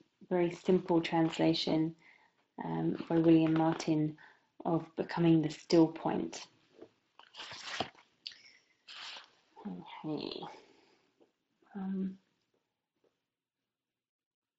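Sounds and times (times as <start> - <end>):
speech: 0.3 - 2.0, 2.6 - 6.5, 7.4 - 7.9, 9.6 - 10.6, 11.8 - 12.2
sipping and swallowing a drink of water: 7.2 - 9.4.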